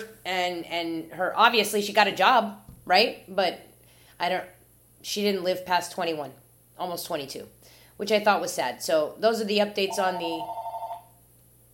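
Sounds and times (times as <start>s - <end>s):
speech: 0.0s - 10.6s
landline house phone electronic warbling trill: 9.8s - 11.2s.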